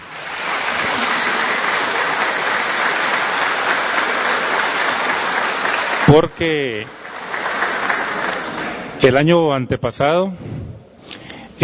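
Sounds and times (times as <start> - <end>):
audience at a public session applauding: 0.0 - 9.0
speech: 6.1 - 7.0, 9.0 - 10.5.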